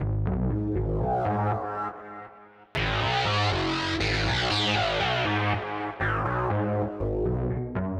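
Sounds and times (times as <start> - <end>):
bass: 0.0 - 7.9.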